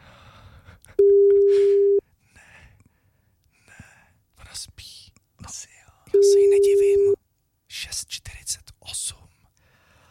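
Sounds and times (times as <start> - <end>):
telephone all circuits busy beep: 1.0 - 2.0, 6.2 - 7.2.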